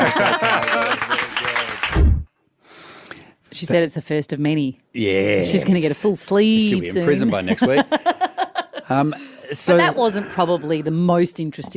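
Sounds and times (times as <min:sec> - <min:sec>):
laughter: 0:00.0 - 0:01.9, 0:06.8 - 0:10.2
single person clapping hands: 0:00.0 - 0:02.1
speech: 0:00.1 - 0:00.5, 0:03.6 - 0:08.1, 0:08.9 - 0:11.7.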